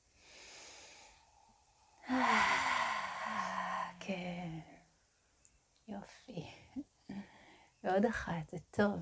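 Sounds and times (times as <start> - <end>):
person breathing in and out: 0.1 - 4.0
voiced falling sigh: 1.0 - 4.0
speech: 4.1 - 4.7, 6.0 - 6.6, 7.9 - 8.9.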